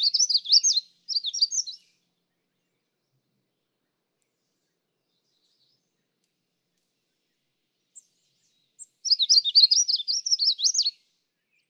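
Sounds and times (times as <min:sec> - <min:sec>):
Magnolia warbler singing: 0:00.0 - 0:03.0, 0:07.9 - 0:11.6.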